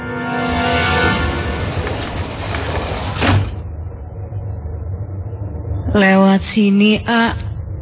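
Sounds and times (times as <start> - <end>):
steady hum: 0.0 - 7.8
low rumble: 0.6 - 7.8
heavy metal door grinding open with a scraping creak: 1.8 - 3.6
speech: 6.0 - 7.5.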